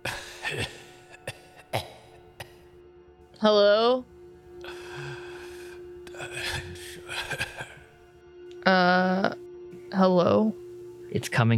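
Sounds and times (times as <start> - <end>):
laughter: 0.0 - 2.1, 6.2 - 8.0
faint dry coughing in an intensive care unit: 0.0 - 2.7, 7.0 - 7.9
speech: 0.5 - 0.8, 3.4 - 4.1, 11.2 - 11.5
steady low hum in an intensive care unit: 1.8 - 11.5.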